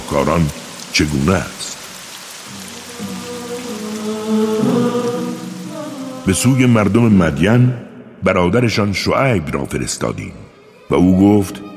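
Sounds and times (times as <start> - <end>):
heavy rain falling: 0.0 - 7.6
speech: 0.1 - 1.6, 6.3 - 11.7.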